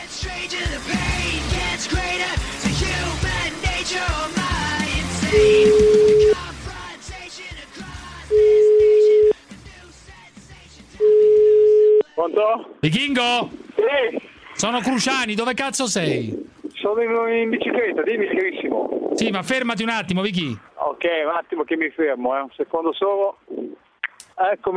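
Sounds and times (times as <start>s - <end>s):
music: 0.0s - 12.3s
speech: 0.2s - 1.0s, 12.4s - 23.5s, 24.4s - 24.7s
ringback tone of an outgoing telephone call: 5.3s - 6.4s, 8.3s - 9.3s, 11.0s - 12.0s.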